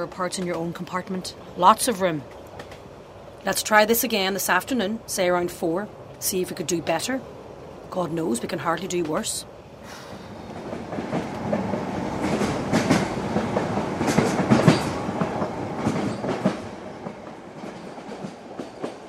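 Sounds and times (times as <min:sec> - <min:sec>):
speech: 0:00.0 - 0:02.8, 0:03.4 - 0:10.0
train carriage rolling clickety-clack on rails: 0:00.0 - 0:02.9, 0:08.3 - 0:09.4, 0:10.4 - 0:19.0.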